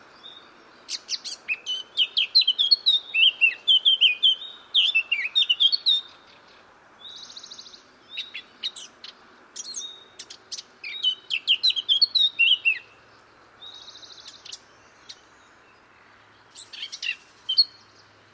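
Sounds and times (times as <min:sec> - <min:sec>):
Eurasian blackcap Sylvia atricapilla singing warble: 0:00.2 - 0:13.0, 0:16.4 - 0:18.1.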